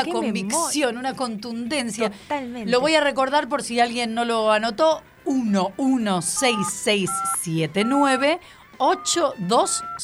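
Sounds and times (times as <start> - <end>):
speech: 0.0 - 10.0
telephone keypad dialing beeps: 6.4 - 10.0.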